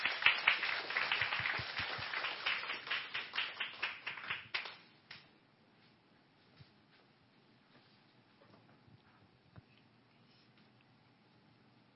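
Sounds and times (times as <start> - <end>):
crowd applauding to welcome a speaker: 0.0 - 4.9.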